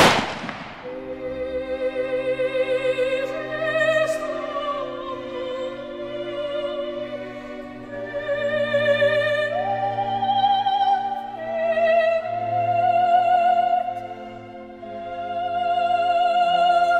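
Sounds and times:
firing squad volley of rifle shots at an execution: 0.0 - 1.0
sustained low tonal music: 0.0 - 16.9.

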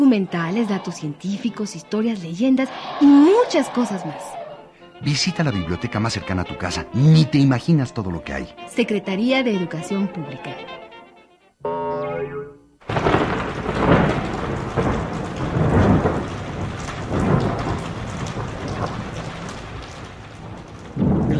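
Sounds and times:
speech: 0.1 - 4.4, 5.0 - 10.8
brief tonal sound: 11.6 - 12.8
heavy steady rain pouring down: 12.8 - 21.3
deep loud rumbles of thunder: 12.9 - 21.3.

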